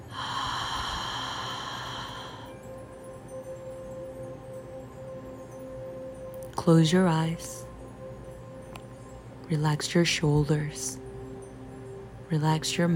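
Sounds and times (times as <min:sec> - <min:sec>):
deep breath exhaled through the mouth: 0:00.1 - 0:02.6
speech: 0:06.6 - 0:07.6, 0:09.5 - 0:11.0, 0:12.3 - 0:12.9.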